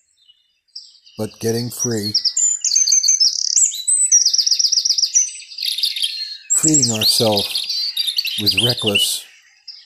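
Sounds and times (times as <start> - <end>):
birds chirping and singing in warbling phrases with trills: 0.0 - 9.8
speech: 1.2 - 2.3, 6.6 - 7.6, 8.4 - 9.3.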